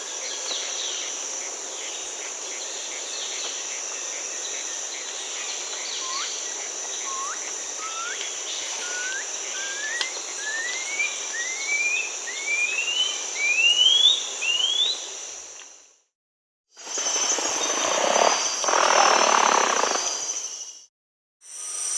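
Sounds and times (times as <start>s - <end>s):
constant high insect drone: 0.0s - 16.1s, 16.8s - 21.9s
blue-throated piping guan calling in South America: 7.0s - 8.2s, 8.8s - 15.0s.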